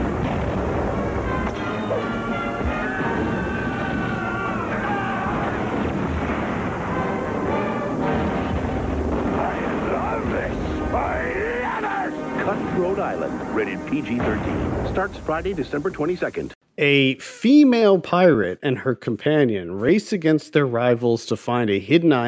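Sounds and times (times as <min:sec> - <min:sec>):
gunfire in a pirate action-adventure movie trailer: 0:00.0 - 0:11.1, 0:14.0 - 0:16.3
cannon blasts in a pirate action-adventure movie trailer: 0:00.0 - 0:16.5
voices shouting over the din: 0:01.5 - 0:07.4, 0:09.2 - 0:14.3
speech: 0:13.9 - 0:22.2.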